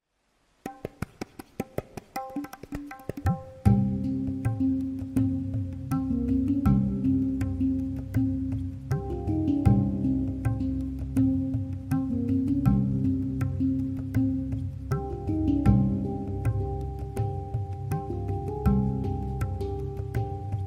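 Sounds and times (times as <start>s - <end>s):
hang drum: 0.6s - 20.6s
tabla: 0.6s - 20.6s.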